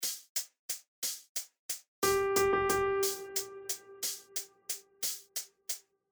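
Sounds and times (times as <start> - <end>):
rhythmic pattern of quarter and eighth notes in triplet feel: 1.0 - 5.4.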